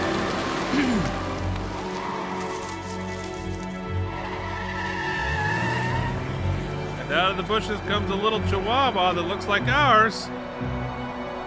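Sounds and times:
car tire squeal: 0:00.0 - 0:07.0
car engine revving as the car pulls away: 0:00.0 - 0:09.2
speech: 0:00.8 - 0:01.2, 0:07.3 - 0:10.9.

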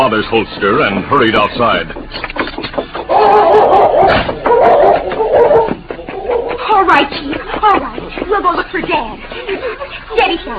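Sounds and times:
speech: 0:00.1 - 0:02.4, 0:08.3 - 0:10.5
powerful dog straining against its chain outside a house, whining: 0:03.1 - 0:06.6
laughter: 0:07.2 - 0:10.5.

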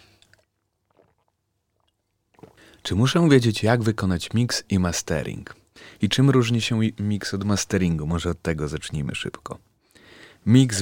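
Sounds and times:
person sipping a drink with slurping and swallowing: 0:00.0 - 0:02.9
speech: 0:02.8 - 0:09.7, 0:10.4 - 0:10.7.

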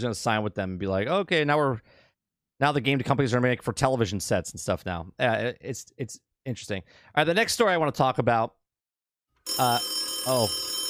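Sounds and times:
speech: 0:00.0 - 0:02.0, 0:02.6 - 0:08.6, 0:09.5 - 0:10.7
telephone ringing with warbling electronic tones: 0:09.4 - 0:10.8.

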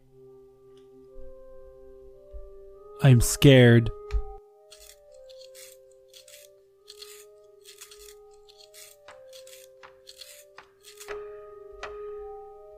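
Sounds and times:
speech: 0:03.0 - 0:04.2
pencil being sharpened: 0:04.7 - 0:11.2.

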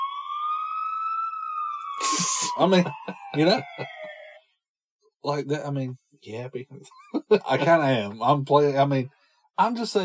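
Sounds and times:
police siren played from a soundboard wailing: 0:00.0 - 0:04.5
speech: 0:02.0 - 0:04.0, 0:05.2 - 0:10.0
laughter: 0:02.0 - 0:04.1, 0:06.8 - 0:08.1.

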